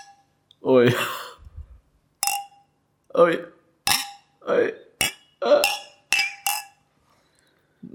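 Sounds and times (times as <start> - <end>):
speech: 0.6 - 1.2, 3.2 - 3.5
drinking glasses clinking: 2.2 - 2.7, 5.0 - 6.8.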